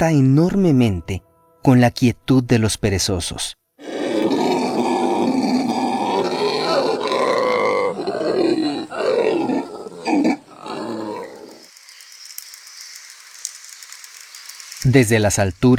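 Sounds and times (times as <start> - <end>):
speech: 0.0 - 3.6, 14.9 - 15.7
faint hiss of forest ambience: 3.6 - 15.7
howler monkey deep roaring howl: 3.8 - 11.7.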